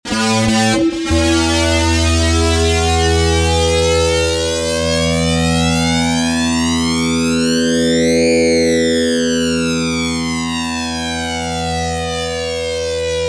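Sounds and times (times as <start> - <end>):
fuzz guitar: 0.0 - 13.2.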